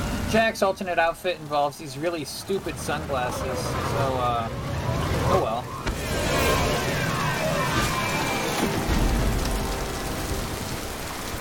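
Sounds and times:
heavy rain pouring: 0:00.0 - 0:11.3
speech: 0:00.3 - 0:04.7, 0:05.3 - 0:05.7.

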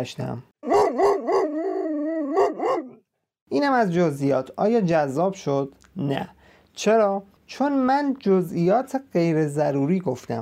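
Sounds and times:
speech: 0:00.0 - 0:01.4, 0:03.5 - 0:10.4
dog barking: 0:00.6 - 0:03.0.

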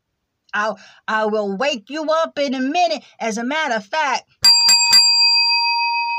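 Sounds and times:
speech: 0:00.5 - 0:04.4
hand bell ringing: 0:04.4 - 0:06.1.

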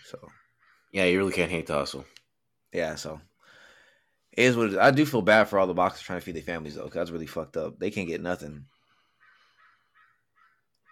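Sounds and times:
speech: 0:00.1 - 0:03.3, 0:04.4 - 0:08.8
crow cawing: 0:00.2 - 0:01.0, 0:09.1 - 0:10.9.

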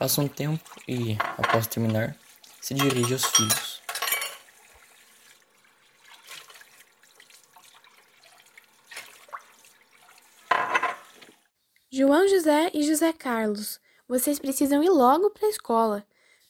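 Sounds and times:
speech: 0:00.0 - 0:03.7, 0:12.2 - 0:16.1
tap water running into sink: 0:00.0 - 0:11.5
clinking glass and crockery: 0:01.0 - 0:02.0, 0:02.7 - 0:04.5, 0:10.5 - 0:11.1.

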